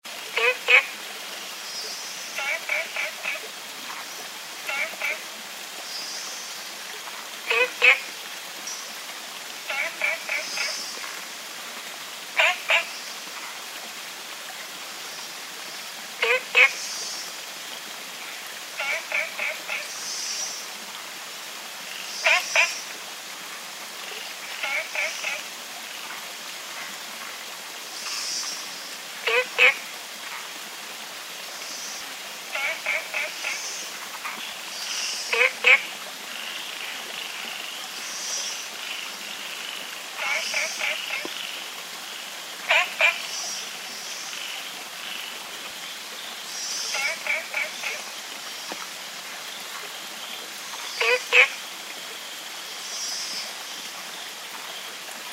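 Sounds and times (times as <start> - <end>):
olive frog calling: 0.4 - 0.9, 2.3 - 3.4, 4.7 - 5.2, 7.5 - 8.1, 9.7 - 10.9, 12.4 - 13.0, 16.2 - 16.8, 18.2 - 20.4, 21.9 - 22.9, 24.2 - 25.5, 29.2 - 30.4, 32.5 - 41.6, 42.7 - 45.3, 46.6 - 48.1, 50.7 - 51.6.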